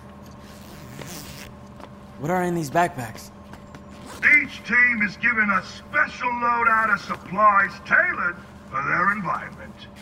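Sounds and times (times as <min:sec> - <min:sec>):
jacket zipper pulled up: 0:00.4 - 0:01.5
speech: 0:02.2 - 0:03.3, 0:04.4 - 0:09.9.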